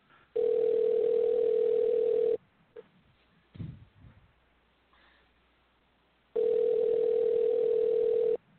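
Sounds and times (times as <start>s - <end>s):
faint noise: 0.0s - 8.5s
phone line ringback tone, long steady electronic beeps, unanswered: 0.4s - 2.4s, 6.4s - 8.4s.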